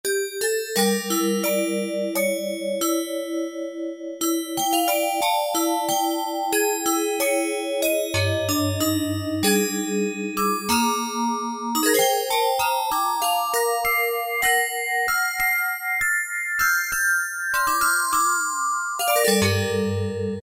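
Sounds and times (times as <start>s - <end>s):
toy piano on a synthesizer: 0.1s - 20.4s.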